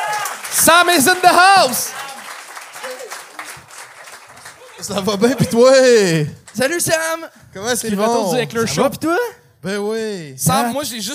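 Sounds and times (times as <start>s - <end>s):
crowd applauding: 0.0s - 7.2s
speech: 0.6s - 2.0s, 4.8s - 11.1s.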